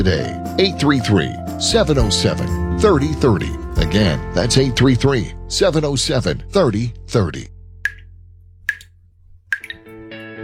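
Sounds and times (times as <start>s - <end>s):
speech: 0.0s - 7.5s
leaky faucet dripping: 7.9s - 10.0s.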